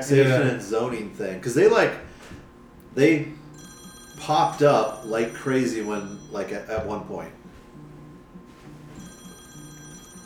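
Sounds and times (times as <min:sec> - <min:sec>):
speech: 0:00.0 - 0:03.4, 0:04.2 - 0:07.4
telephone ringing with an electronic warble: 0:03.2 - 0:10.2.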